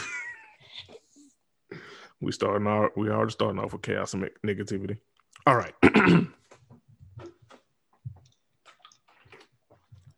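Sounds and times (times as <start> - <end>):
speech: 2.2 - 6.4
person sipping water: 6.4 - 10.1
wet slurps and gulps: 6.4 - 10.1.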